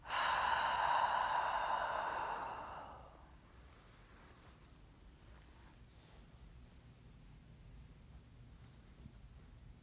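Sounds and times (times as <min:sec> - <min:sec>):
long deep breath: 0:00.0 - 0:03.5.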